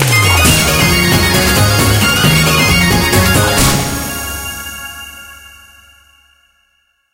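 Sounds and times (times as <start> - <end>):
jackpot mega win jingle: 0.0 - 5.4.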